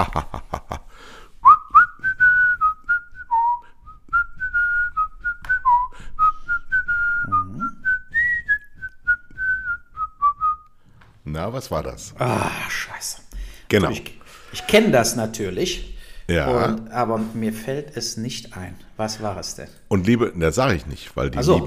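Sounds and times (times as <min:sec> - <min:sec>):
speech: 0:00.0 - 0:00.4, 0:11.5 - 0:21.6
laughter: 0:00.0 - 0:00.9, 0:21.4 - 0:21.6
person whistling a tune: 0:01.4 - 0:10.8.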